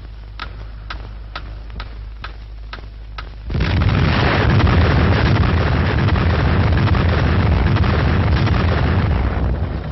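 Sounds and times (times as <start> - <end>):
atomic bomb test explosion roaring rumble: 3.5 - 9.9.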